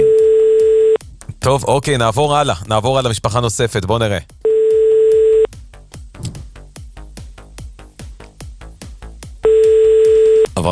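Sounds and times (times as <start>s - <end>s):
electronic telephone busy tone on an unanswered call: 0.0s - 1.0s, 4.5s - 5.5s, 9.4s - 10.5s
speech: 1.5s - 4.4s.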